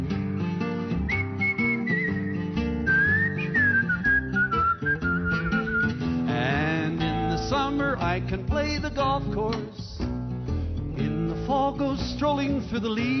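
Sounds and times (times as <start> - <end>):
band accompaniment with piano and bass: 0.0 - 13.1
group of people whistling a tune: 1.0 - 6.1
speech: 8.1 - 9.9, 11.5 - 13.1.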